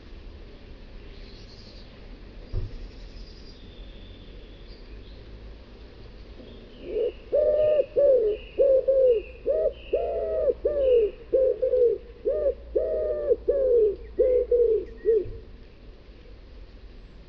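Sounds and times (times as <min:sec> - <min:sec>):
common wood pigeon giving low throaty coos: 0:06.8 - 0:15.4.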